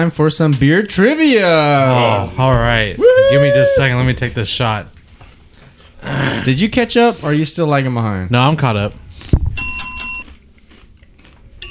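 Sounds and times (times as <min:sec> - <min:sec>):
speech: 0:00.0 - 0:05.0, 0:06.0 - 0:09.0
bright metallic bell ringing: 0:09.6 - 0:10.3.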